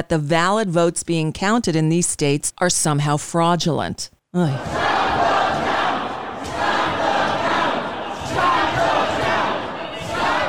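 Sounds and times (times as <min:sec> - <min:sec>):
speech: 0:00.0 - 0:04.8
angry political protest crowd shouting outside a vote counting center in Detroit: 0:04.6 - 0:10.4.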